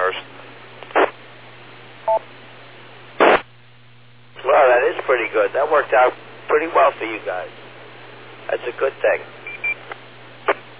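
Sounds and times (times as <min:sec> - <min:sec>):
harsh static on a phone line: 0:00.0 - 0:10.7
low steady hum: 0:00.0 - 0:10.7
speech: 0:05.1 - 0:07.6, 0:08.5 - 0:09.4
two-tone incoming call beep on a phone line: 0:09.5 - 0:09.8.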